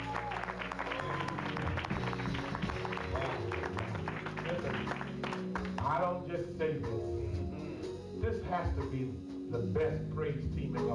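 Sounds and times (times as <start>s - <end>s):
audience applause: 0.0s - 5.8s
speech: 6.1s - 7.2s, 8.2s - 10.9s.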